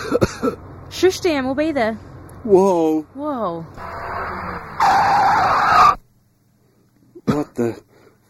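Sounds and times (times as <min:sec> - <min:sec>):
car engine rumble: 0:00.0 - 0:07.4
speech: 0:00.2 - 0:04.4, 0:07.6 - 0:08.2
car tires skidding before a crash: 0:03.8 - 0:06.0.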